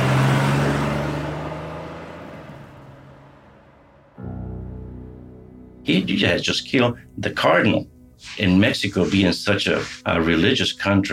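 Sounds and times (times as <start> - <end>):
car engine roaring as the car speeds away: 0.0 - 4.2
speech: 5.9 - 11.1.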